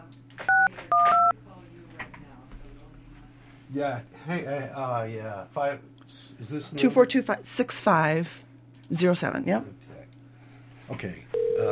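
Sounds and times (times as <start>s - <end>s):
short loud telephone keypad tones: 0.5s - 1.3s, 11.4s - 11.7s
speech: 3.7s - 9.8s, 10.9s - 11.7s.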